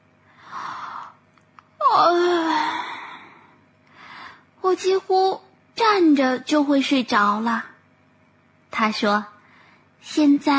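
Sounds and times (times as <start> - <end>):
person yawning: 1.8 - 3.5
speech: 4.8 - 7.7, 8.8 - 9.3, 10.0 - 10.5.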